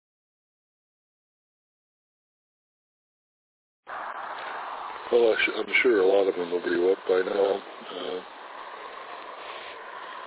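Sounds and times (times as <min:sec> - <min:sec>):
road traffic and trucks on a wet road: 0:03.9 - 0:10.2
speech: 0:05.1 - 0:08.4.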